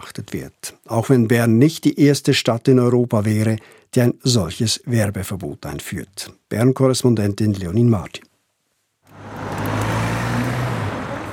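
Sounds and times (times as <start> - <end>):
speech: 0.2 - 8.3
cars and buses passing on a busy street: 9.1 - 11.3.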